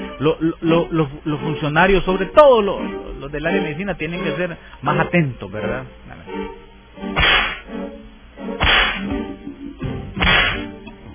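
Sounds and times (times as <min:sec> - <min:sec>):
speech: 0:00.2 - 0:07.3
whip cracking lashes: 0:07.2 - 0:07.7, 0:08.6 - 0:09.2, 0:10.2 - 0:10.7.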